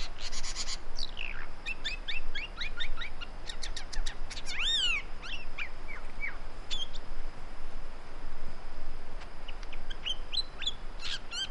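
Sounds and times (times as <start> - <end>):
great woodswallow calls: 0.0 - 7.1, 9.4 - 11.5.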